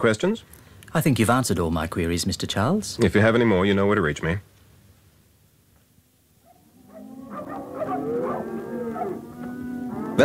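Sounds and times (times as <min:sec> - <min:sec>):
speech: 0:00.0 - 0:04.5
cattle mooing and lowing during a roundup: 0:06.8 - 0:10.2.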